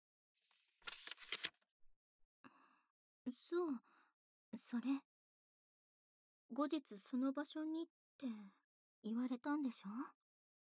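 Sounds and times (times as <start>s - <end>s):
sheet of paper rustling and crinkling: 0.5s - 1.6s
speech: 3.3s - 5.1s, 6.5s - 10.2s.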